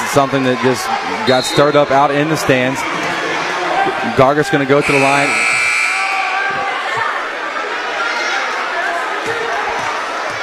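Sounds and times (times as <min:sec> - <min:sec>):
murmur of a crowded gym: 0:00.0 - 0:10.4
speech: 0:00.1 - 0:03.0, 0:04.0 - 0:05.6
arena buzzer blaring during free throw: 0:04.8 - 0:06.4.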